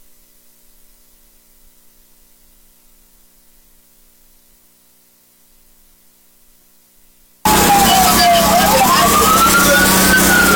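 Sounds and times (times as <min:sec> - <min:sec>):
fire truck siren wailing: 0:07.5 - 0:10.5
street noise: 0:07.5 - 0:10.5.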